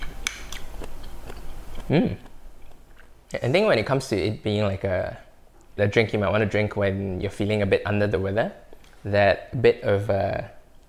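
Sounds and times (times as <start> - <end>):
person eating orange slices: 0.3 - 3.3
speech: 1.9 - 2.3, 3.3 - 5.2, 5.8 - 10.6.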